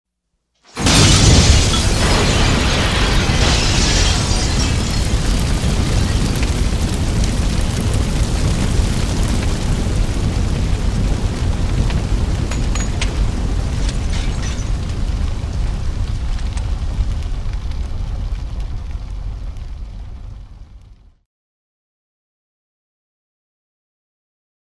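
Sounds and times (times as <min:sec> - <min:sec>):
explosion: 0:00.7 - 0:21.2
fire burning: 0:00.7 - 0:21.2.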